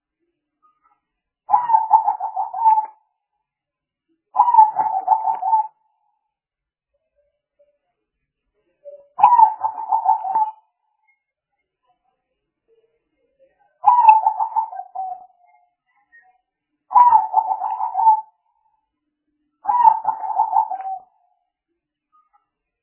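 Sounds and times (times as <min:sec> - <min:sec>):
spotted dove giving pulsed coo phrases: 0:01.5 - 0:02.9, 0:04.4 - 0:05.7, 0:09.2 - 0:10.6, 0:13.8 - 0:15.2, 0:16.9 - 0:18.3, 0:19.7 - 0:21.1.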